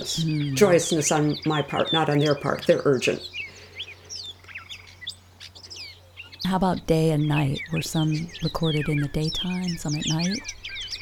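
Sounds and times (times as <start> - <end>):
speech: 0.0 - 3.4, 6.4 - 10.6
steady low hum: 0.0 - 3.8, 6.4 - 11.0
many birds singing in a dense dawn-style chorus: 0.0 - 11.0.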